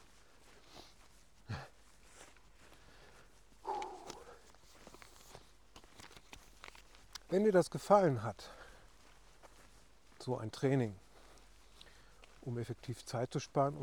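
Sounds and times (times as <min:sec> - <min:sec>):
faint breathy noise: 0:00.0 - 0:05.6, 0:08.4 - 0:10.2, 0:11.0 - 0:12.5
quiet steady footsteps of someone walking: 0:00.0 - 0:13.5
speech: 0:07.3 - 0:08.6, 0:10.3 - 0:11.0, 0:12.4 - 0:13.8.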